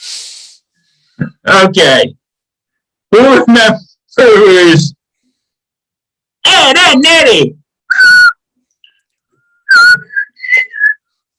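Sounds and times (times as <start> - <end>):
speech: 1.2 - 2.2, 3.1 - 4.9, 6.5 - 7.6
person whistling a tune: 9.6 - 11.0.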